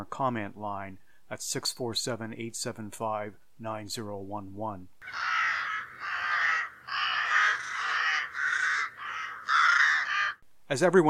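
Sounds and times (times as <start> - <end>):
speech: 0.0 - 5.4, 10.7 - 11.0
crows cawing loudly: 5.0 - 10.4.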